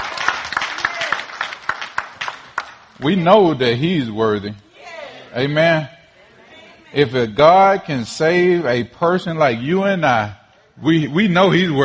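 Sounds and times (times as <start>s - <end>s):
congregation clapping hands in praise during a church service: 0.0s - 3.4s
speech: 3.0s - 4.6s, 5.3s - 6.0s, 6.9s - 11.8s
congregation voices and talk: 3.0s - 8.9s.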